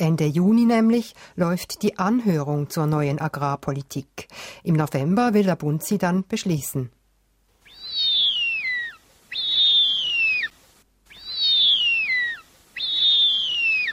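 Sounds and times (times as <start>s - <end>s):
speech: 0.0s - 7.0s
young bearded vulture giving drawn-out whistling calls: 7.6s - 13.9s.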